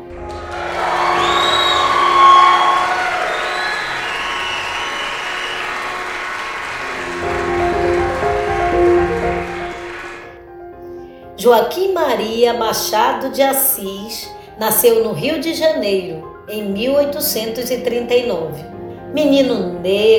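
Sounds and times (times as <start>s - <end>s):
crowd clapping: 0.0s - 10.4s
speech: 11.4s - 20.1s.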